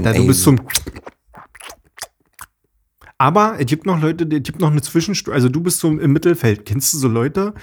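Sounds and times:
speech: 0.0s - 0.9s, 3.2s - 7.6s
loud chewing with crisp crunching bites: 0.0s - 3.2s.

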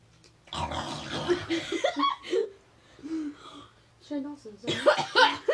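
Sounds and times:
person grunting and snorting imitating a warthog: 0.6s - 1.6s
speech: 4.1s - 5.4s.

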